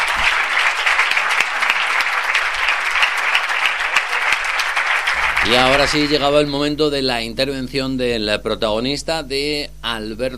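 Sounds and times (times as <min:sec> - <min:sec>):
audience applause: 0:00.0 - 0:06.6
speech: 0:05.5 - 0:10.3.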